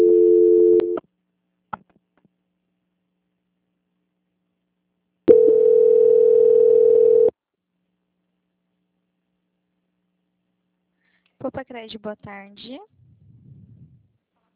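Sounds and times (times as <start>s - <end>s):
telephone line tone during a call transfer: 0.0s - 1.0s, 5.3s - 7.3s
speech: 11.8s - 13.0s.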